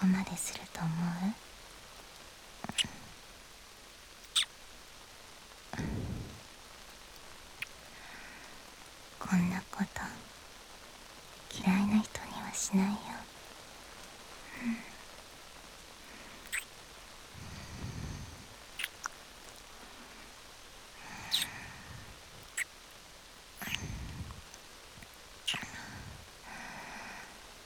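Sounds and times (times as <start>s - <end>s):
steady rain hissing softly: 0.0s - 27.6s.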